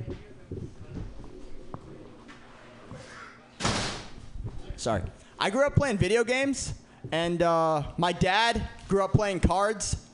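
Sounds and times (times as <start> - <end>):
door closing with a solid thud: 3.6 - 4.3
speech: 4.8 - 10.0.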